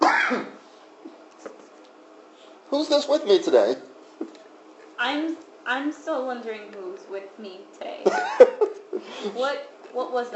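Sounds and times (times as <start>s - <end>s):
loud harsh breathy cough: 0.0s - 0.6s
speech: 2.7s - 3.9s, 5.0s - 10.3s
laughter: 8.0s - 9.4s.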